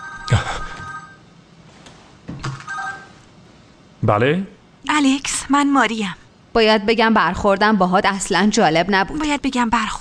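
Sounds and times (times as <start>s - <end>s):
telephone ringing with a warbling electronic tone: 0.0s - 1.2s, 2.6s - 3.2s
speech: 4.0s - 10.0s.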